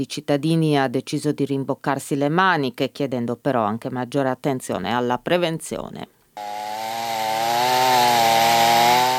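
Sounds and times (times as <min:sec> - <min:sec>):
speech: 0:00.0 - 0:06.7
chainsaw cutting branches and tree trunks on the Iudrio river banks: 0:06.4 - 0:09.1.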